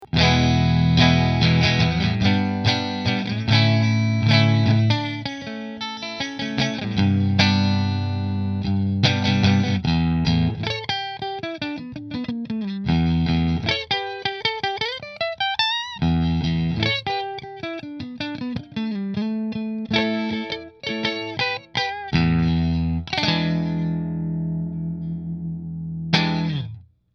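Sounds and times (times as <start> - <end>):
electric guitar through a Fender amplifier: 0.0 - 26.8.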